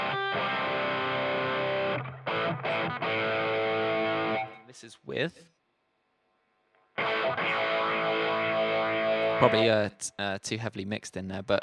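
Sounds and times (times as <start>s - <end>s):
high-gain distorted electric guitar through a modded amp playing sustained chords: 0.0s - 4.7s, 7.0s - 9.8s
speech: 4.8s - 5.6s, 9.4s - 11.6s.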